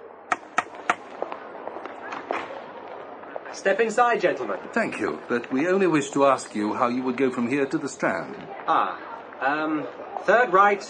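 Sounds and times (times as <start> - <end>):
walking stick thumping on pavement: 0.3 - 2.5
speech: 3.6 - 10.8.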